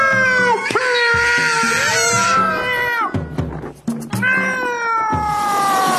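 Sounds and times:
cats screeching and caterwauling: 0.0 - 3.3, 4.2 - 5.9.

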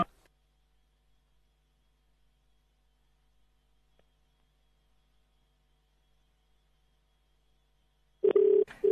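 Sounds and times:
outgoing phone call electronic ringback tone: 8.2 - 8.8.

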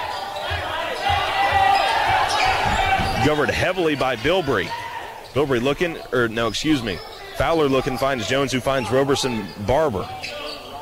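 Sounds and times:
crowd noise: 0.0 - 10.7
basketball being dribbled on a court during a boys' high school game: 0.1 - 3.6
speech: 3.2 - 10.4.

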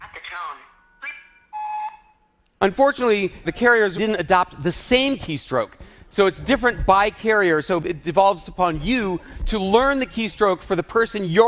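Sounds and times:
speech: 0.4 - 1.2, 2.6 - 11.4
steady electronic voicemail beep: 1.1 - 2.2.

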